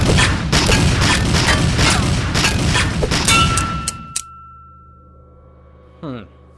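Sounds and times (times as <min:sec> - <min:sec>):
gunfire bursts: 0:00.0 - 0:03.3.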